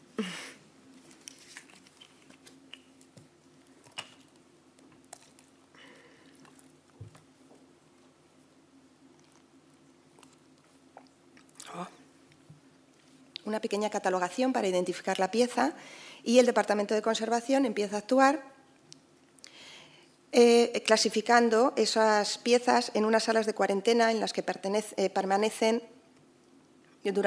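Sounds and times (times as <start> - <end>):
quiet steady hum: 0.0 - 27.2
person drinking water: 0.1 - 7.4, 9.0 - 12.5
speech: 13.5 - 18.5, 20.3 - 25.9, 27.0 - 27.2.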